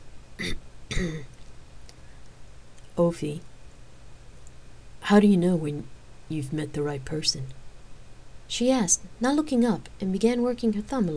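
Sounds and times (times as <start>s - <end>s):
speech: 0.4s - 1.3s, 3.0s - 3.5s, 5.1s - 7.6s, 8.5s - 11.1s
woman clearing throat: 0.4s - 1.4s.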